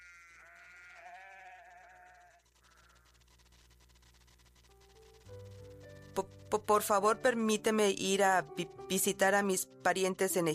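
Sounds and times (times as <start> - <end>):
sheep bleating: 0.0 - 3.1
farmyard rustling: 0.0 - 4.0, 4.6 - 10.5
speech: 5.3 - 10.5.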